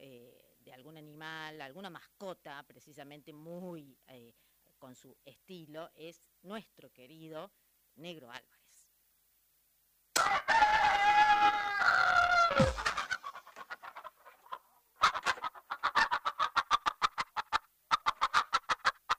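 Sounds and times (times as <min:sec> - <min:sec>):
speech: 0:00.7 - 0:08.6
rooster crowing: 0:10.2 - 0:13.3
sharp rhythmic clucking pulses: 0:12.6 - 0:19.1.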